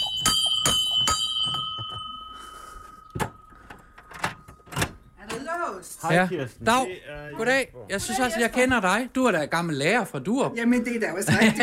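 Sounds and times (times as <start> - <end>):
ship's bell rung at a doorway: 0.0 - 4.8
speech: 5.8 - 11.6
laughter: 11.2 - 11.6.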